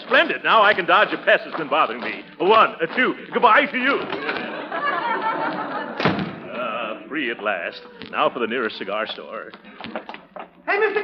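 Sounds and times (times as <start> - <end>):
speech: 0.1 - 4.9, 7.1 - 11.0
murmuring voices: 0.6 - 10.8
laughter: 2.8 - 8.2, 9.6 - 11.0
heavy door to an alley slamming shut: 6.0 - 6.5.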